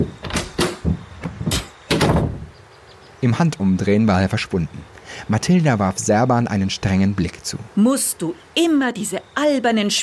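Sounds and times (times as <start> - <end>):
door clicking and rattling as it opens: 0.0 - 2.5
speech: 3.2 - 10.0.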